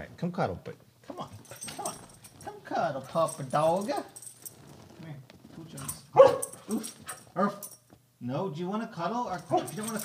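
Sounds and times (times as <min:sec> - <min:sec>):
speech: 0:00.2 - 0:00.8, 0:02.8 - 0:04.2, 0:06.7 - 0:10.0
dog barking: 0:06.1 - 0:07.6, 0:09.5 - 0:09.9.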